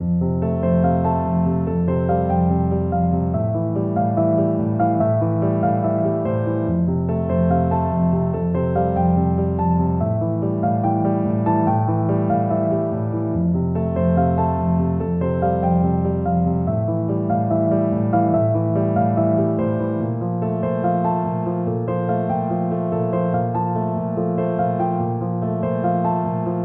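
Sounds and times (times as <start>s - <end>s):
cinematic piano: 0.0s - 26.6s.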